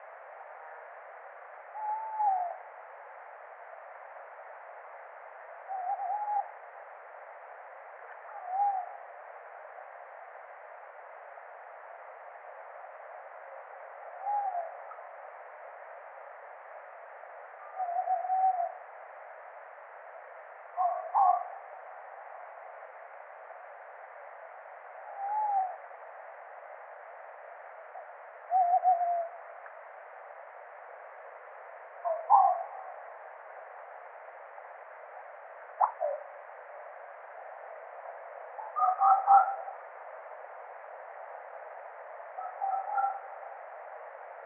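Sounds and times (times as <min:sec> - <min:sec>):
tawny owl Strix aluco calling: 0:01.8 - 0:02.6, 0:05.7 - 0:06.5, 0:08.3 - 0:09.0, 0:14.2 - 0:15.0, 0:17.6 - 0:18.8, 0:20.8 - 0:21.7, 0:25.1 - 0:25.8, 0:28.5 - 0:29.4, 0:32.0 - 0:33.0, 0:35.8 - 0:36.3, 0:38.6 - 0:39.8, 0:42.4 - 0:43.4.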